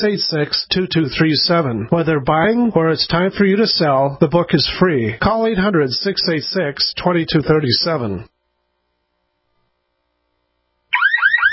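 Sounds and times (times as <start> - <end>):
speech: 0.0 - 8.3
loud electronic home security alarm wailing with rapid upward sweeps: 10.9 - 11.5.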